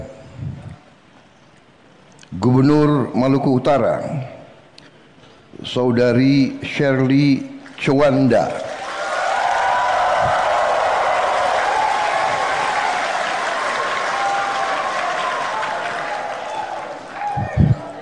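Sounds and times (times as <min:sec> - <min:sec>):
speech: 0:02.3 - 0:04.4, 0:05.6 - 0:08.7
audience applause at an official government gathering: 0:08.6 - 0:18.0
crowd voices: 0:09.8 - 0:18.0.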